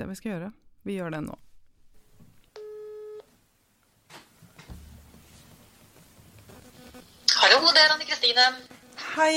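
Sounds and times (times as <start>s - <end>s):
speech: 0.0s - 1.4s, 7.6s - 9.3s
electronic telephone ringing tone of an outgoing call: 2.6s - 3.3s.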